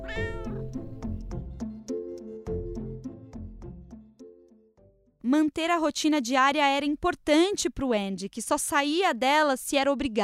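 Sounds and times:
kitten meowing: 0.0 - 0.7
speech: 5.3 - 10.2.

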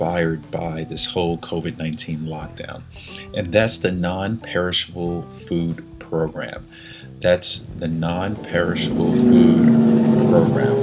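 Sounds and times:
speech: 0.0 - 10.8
loud truck passing: 8.6 - 10.8.

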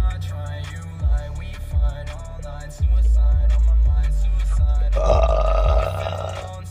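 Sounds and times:
speech: 0.2 - 6.4
long deep rumbling belch: 5.0 - 6.5.

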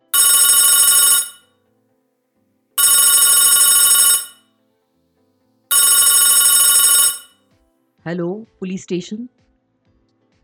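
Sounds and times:
telephone bell ringing in a police station at night: 0.0 - 1.4, 2.8 - 4.4, 5.7 - 7.3
speech: 8.1 - 9.4.

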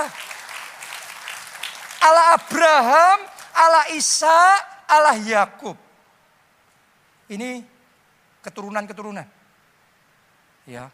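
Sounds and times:
congregation clapping: 0.0 - 3.8
speech: 2.0 - 5.8, 7.3 - 7.7, 8.4 - 9.4, 10.7 - 10.9.

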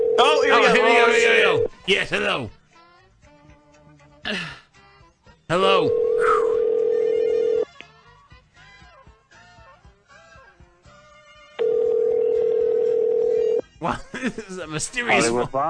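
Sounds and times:
loud steady electronic telephone ring tone: 0.0 - 1.7, 5.7 - 7.7, 11.6 - 13.6
speech: 0.2 - 2.6, 4.3 - 4.6, 5.5 - 6.1, 13.8 - 15.6
laughter: 13.8 - 15.5.

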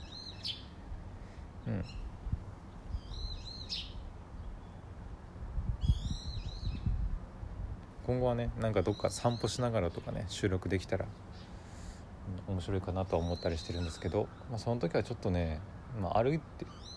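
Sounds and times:
birds chirping outdoors around a house on a late October morning: 0.0 - 4.9, 5.8 - 7.0, 8.1 - 16.9
person murmuring: 1.6 - 2.0
speech: 1.7 - 2.1, 8.1 - 11.3, 12.5 - 16.9.

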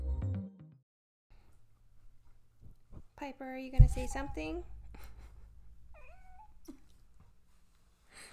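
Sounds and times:
speech: 3.3 - 4.8
cat meowing: 5.9 - 6.7.

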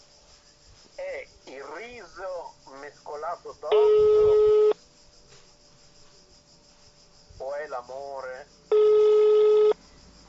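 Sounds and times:
speech: 1.8 - 4.6, 7.8 - 8.8
electronic telephone ring: 3.7 - 4.8, 8.7 - 9.8.

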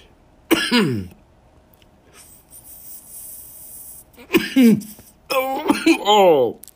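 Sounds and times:
person coughing harshly: 0.5 - 1.2, 4.2 - 6.2
speech: 0.7 - 1.2, 4.6 - 6.6.

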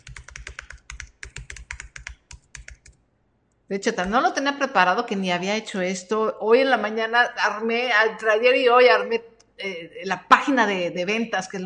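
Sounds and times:
computer keyboard typing a web address: 0.0 - 3.0
speech: 3.7 - 11.6.

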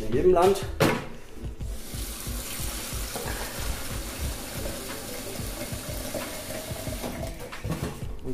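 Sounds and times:
speech: 0.1 - 0.8
tap water pouring into a container: 1.8 - 7.5.

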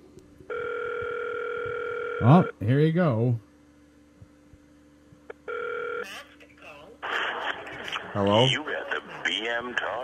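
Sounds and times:
loud steady electronic telephone tone: 0.5 - 2.5, 5.4 - 6.1
speech: 2.2 - 3.5, 8.2 - 8.7, 9.4 - 10.0.

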